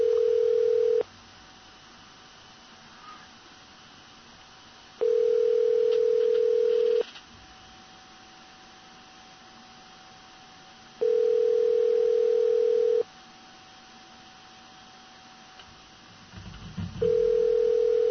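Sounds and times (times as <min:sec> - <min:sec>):
telephone ringback tone of an outgoing call to a cell phone: 0:00.0 - 0:01.0, 0:05.0 - 0:07.0, 0:11.0 - 0:13.0, 0:17.0 - 0:18.0.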